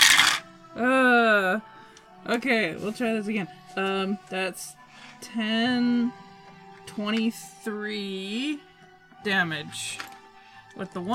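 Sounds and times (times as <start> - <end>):
dice tumbling across a table: 0.0 - 0.4
speech: 2.2 - 6.2, 7.0 - 10.1, 10.8 - 11.1.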